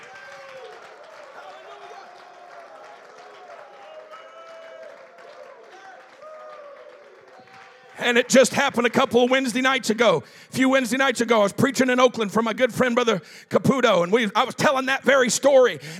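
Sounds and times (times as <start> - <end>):
church crowd shouting praise: 0.0 - 8.7
church audience clapping: 0.0 - 10.1
speech: 8.0 - 15.9.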